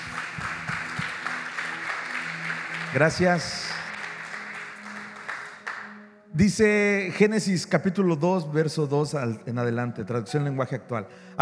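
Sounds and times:
church congregation applause: 0:00.0 - 0:06.0
speech: 0:02.9 - 0:03.6, 0:06.4 - 0:11.4.

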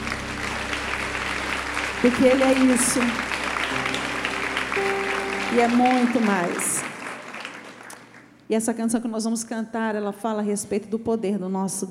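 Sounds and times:
sustained musical tone: 0:00.0 - 0:07.5
congregation applauding: 0:00.0 - 0:08.4
speech: 0:02.0 - 0:03.8, 0:04.8 - 0:06.7, 0:08.5 - 0:11.9.

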